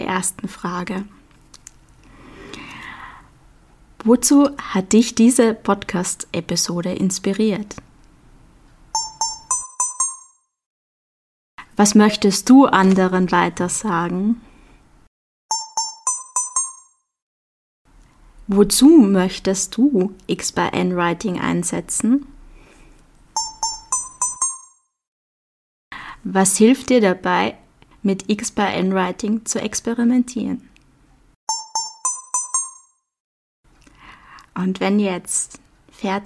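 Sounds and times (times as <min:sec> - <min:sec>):
speech: 0:00.1 - 0:01.2, 0:04.0 - 0:07.9, 0:11.8 - 0:14.5, 0:18.5 - 0:22.3, 0:26.2 - 0:30.7, 0:34.6 - 0:36.2
short bright chiming music jingle marking timer start: 0:09.0 - 0:10.4, 0:15.5 - 0:17.0, 0:23.4 - 0:24.8, 0:31.5 - 0:33.0.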